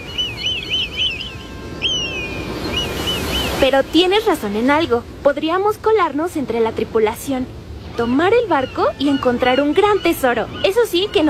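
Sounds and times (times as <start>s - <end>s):
eagle calling: 0.0s - 3.7s, 7.8s - 11.2s
speech: 3.6s - 11.2s.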